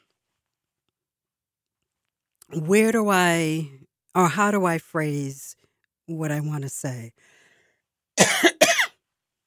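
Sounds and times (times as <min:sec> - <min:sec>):
speech: 0:02.5 - 0:07.3
person coughing: 0:08.2 - 0:09.0.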